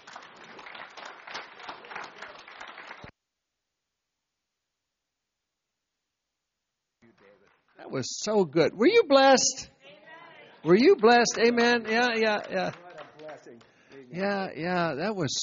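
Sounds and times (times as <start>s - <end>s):
audience clapping: 0.0s - 3.1s, 7.0s - 8.0s, 10.0s - 14.6s
speech: 7.9s - 9.7s, 10.6s - 12.8s, 14.1s - 15.4s.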